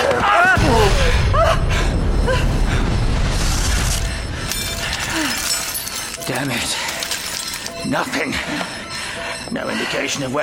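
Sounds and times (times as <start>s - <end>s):
loud sustained self-destruct explosion roaring: 0.6s - 4.5s
debris shattering: 2.8s - 8.0s
speech: 6.3s - 6.9s, 7.9s - 8.8s, 9.5s - 10.4s.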